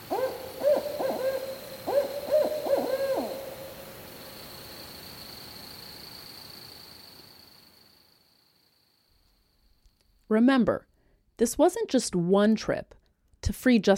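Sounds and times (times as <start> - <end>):
barred owl hooting in Maryland: 0.0 - 4.0
faint steady hiss: 0.0 - 12.0
speech: 10.3 - 13.9.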